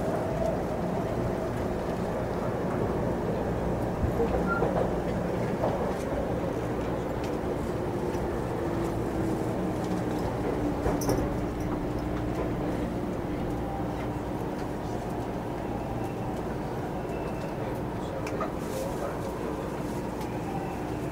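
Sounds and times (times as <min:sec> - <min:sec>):
low rumble and hum inside a commuter train stopped at Shibuya station: 0:00.0 - 0:21.1.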